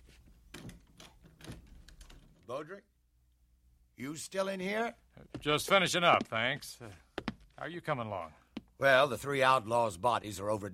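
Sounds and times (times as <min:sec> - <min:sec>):
speech: 0:02.5 - 0:03.0, 0:04.0 - 0:07.0, 0:07.6 - 0:10.7
footsteps on a wooden boardwalk outside a bank: 0:05.2 - 0:07.7, 0:08.5 - 0:08.7.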